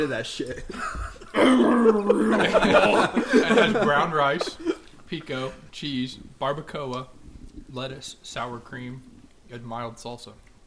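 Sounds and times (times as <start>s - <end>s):
speech: 0.0s - 10.4s
laughter: 0.3s - 5.6s
person clearing throat with a gravelly rasp: 1.3s - 2.8s.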